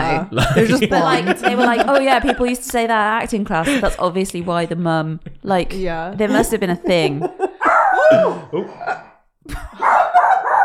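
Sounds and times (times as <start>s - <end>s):
speech: 0.0s - 7.5s, 8.1s - 10.0s
laughter: 0.4s - 2.8s, 3.5s - 4.1s, 6.2s - 10.6s
dog barking and yelping in a studio: 7.6s - 9.1s, 9.8s - 10.6s.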